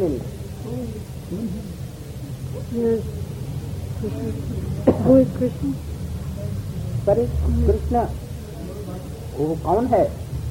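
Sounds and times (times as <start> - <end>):
speech: 0.0 - 0.4, 2.6 - 3.2, 4.0 - 5.9, 7.1 - 8.2, 9.4 - 10.2
Asian koel calling kuhu kuhu: 0.0 - 10.4
dull murmur: 0.0 - 10.4.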